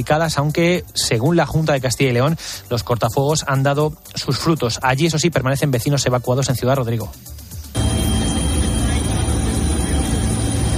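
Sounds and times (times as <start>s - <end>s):
speech: 0.0s - 7.4s
firefighting helicopters flying overhead: 7.7s - 10.7s.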